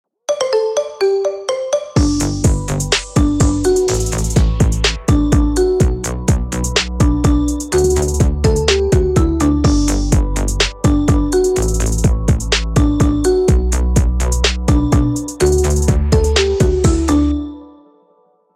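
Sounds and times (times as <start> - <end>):
marimba: 0.3 - 17.8.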